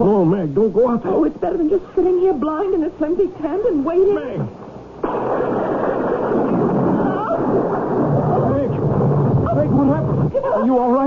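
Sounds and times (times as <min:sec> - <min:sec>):
speech: 0:00.0 - 0:05.6, 0:09.6 - 0:11.0
heavy sustained storm roar: 0:05.0 - 0:10.3
thunder crack from lightning strike: 0:05.0 - 0:10.4.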